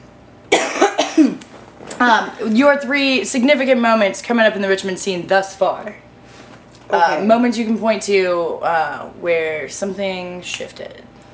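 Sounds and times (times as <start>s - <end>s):
man coughing harshly: 0.5s - 1.4s
speech: 2.0s - 6.1s, 6.9s - 11.1s.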